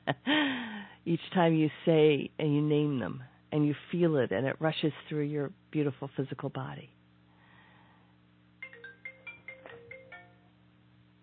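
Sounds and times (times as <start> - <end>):
low steady hum: 0.0 - 11.2
speech: 0.1 - 7.0
phone ringtone of electronic tones: 8.6 - 10.6.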